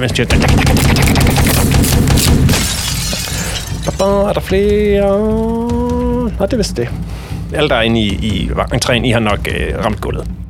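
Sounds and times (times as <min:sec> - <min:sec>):
speech: 0:00.0 - 0:02.7, 0:03.9 - 0:10.4
rapid burst of gunfire: 0:00.3 - 0:02.6.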